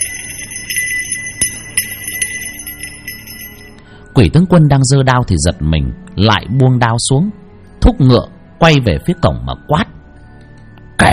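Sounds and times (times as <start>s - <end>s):
bell jingling: 0.0s - 3.8s
speech: 4.2s - 9.9s.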